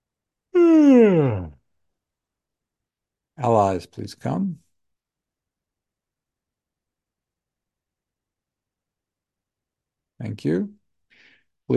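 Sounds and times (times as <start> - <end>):
person yawning: 0.6 - 1.6
speech: 3.4 - 4.6, 10.2 - 10.8.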